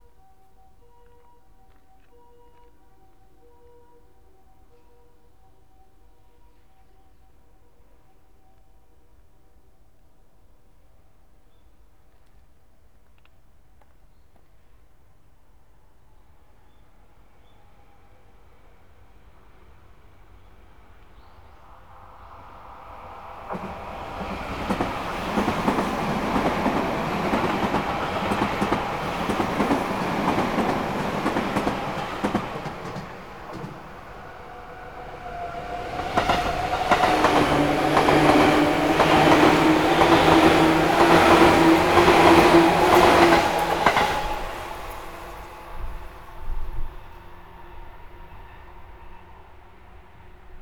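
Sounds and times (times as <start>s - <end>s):
downbound train passing on a curve: 19.2s - 50.6s.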